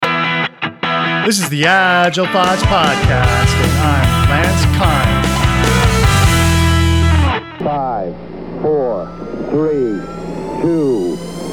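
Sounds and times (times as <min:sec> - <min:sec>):
speech: 0:01.2 - 0:05.4, 0:07.6 - 0:11.2
rocket engine roar: 0:02.7 - 0:11.5.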